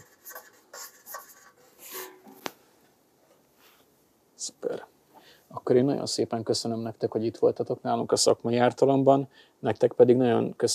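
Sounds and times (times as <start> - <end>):
pen scratching while handwriting a signature: 0.0 - 1.6
speech: 4.5 - 4.9, 5.7 - 10.7.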